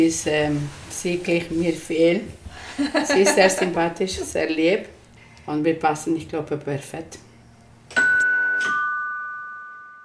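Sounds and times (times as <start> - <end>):
speech: 0.0 - 7.2
laughter: 2.6 - 4.4
two-tone doorbell chime: 7.9 - 10.0.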